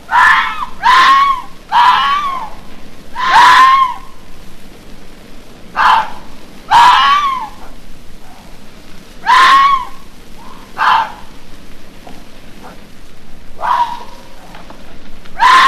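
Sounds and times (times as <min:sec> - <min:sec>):
red fox screaming: 0:00.0 - 0:04.2, 0:05.8 - 0:08.5, 0:09.2 - 0:11.3, 0:13.5 - 0:14.7, 0:15.3 - 0:15.6.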